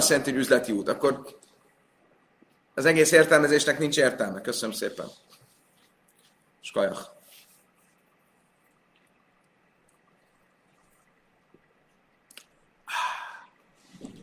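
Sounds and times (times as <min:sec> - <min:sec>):
speech: 0:00.0 - 0:01.5, 0:02.8 - 0:05.4, 0:06.6 - 0:07.2
faint room hum: 0:00.0 - 0:14.2
person sipping fresh water with a small slurp: 0:07.6 - 0:14.1
breathy satisfied exhale: 0:12.9 - 0:13.6.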